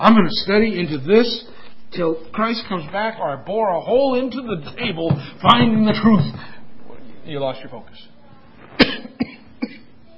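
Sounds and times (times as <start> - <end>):
speech: 0.0 - 6.5, 7.2 - 8.1
short sharp coughs: 8.8 - 10.0.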